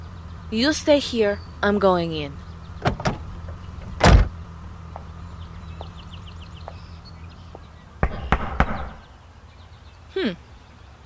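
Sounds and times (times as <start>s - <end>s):
low steady hum: 0.0s - 11.0s
speech: 0.5s - 2.4s
knocking on the door of a house: 8.0s - 9.0s.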